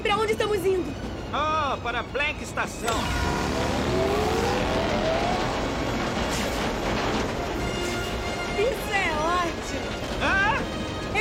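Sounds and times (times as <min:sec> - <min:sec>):
speech: 0:00.1 - 0:04.4
car engine running steadily: 0:02.9 - 0:10.2.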